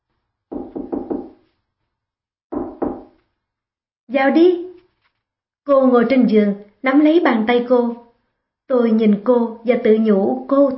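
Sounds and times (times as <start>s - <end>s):
firm knocking on a hotel room door: 0.5s - 1.5s, 2.5s - 3.2s
speech: 4.1s - 4.6s, 5.6s - 8.0s, 8.7s - 10.7s.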